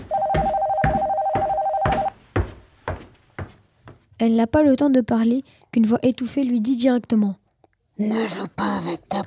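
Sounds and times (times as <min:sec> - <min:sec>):
telephone ringing in a steady electronic tone: 0:00.1 - 0:02.2
speech: 0:04.2 - 0:09.2.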